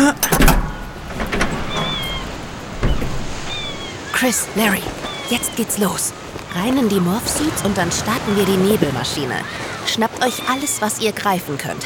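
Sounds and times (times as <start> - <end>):
car tailgate clicks and thumps: 0.0 - 3.8
speech: 4.2 - 11.8.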